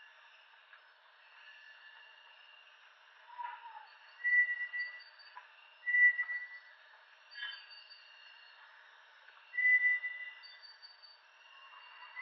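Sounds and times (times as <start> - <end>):
steady background drone: 0.0 - 12.1
Bartlett's tinamou whistling soft drawn-out notes: 3.3 - 5.1, 5.8 - 6.7, 9.6 - 10.6.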